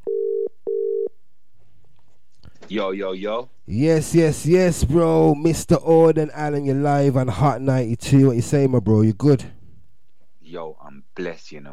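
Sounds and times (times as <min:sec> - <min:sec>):
outgoing phone call ringing tone: 0:00.0 - 0:01.1
speech: 0:02.7 - 0:09.6, 0:10.5 - 0:11.7.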